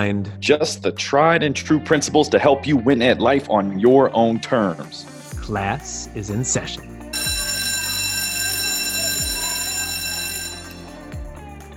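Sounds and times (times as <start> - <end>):
speech: 0.0 - 7.0
electric bell ringing: 7.1 - 11.4.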